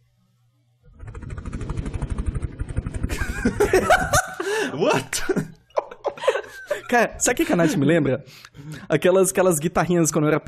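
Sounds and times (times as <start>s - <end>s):
voice imitating a helicopter with rapid chopping pulses: 0.9s - 3.7s
laughter: 3.1s - 7.9s
speech: 3.4s - 5.4s, 6.9s - 10.4s.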